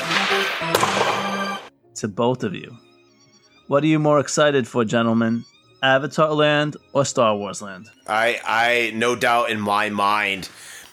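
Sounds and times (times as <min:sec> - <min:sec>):
hockey slap shot crack: 0:00.0 - 0:01.6
speech: 0:02.0 - 0:02.9, 0:03.7 - 0:10.7.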